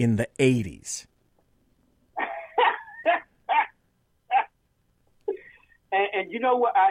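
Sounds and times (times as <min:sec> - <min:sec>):
speech: 0:00.0 - 0:01.1, 0:05.9 - 0:06.9
dog barking: 0:03.5 - 0:04.5.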